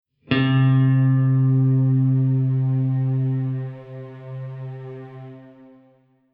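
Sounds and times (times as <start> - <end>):
guitar playing the note Do: 0.3 - 6.0.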